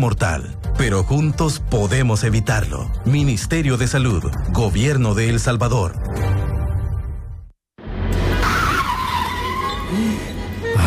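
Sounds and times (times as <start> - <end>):
speech: 0.0 - 6.4
car tires skidding under hard braking: 8.3 - 10.7.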